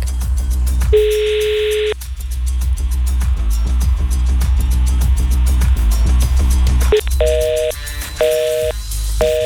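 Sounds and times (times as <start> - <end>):
continuous music: 0.0 - 9.4
ringback tone of an unanswered outgoing telephone call: 1.0 - 2.0, 7.0 - 9.4.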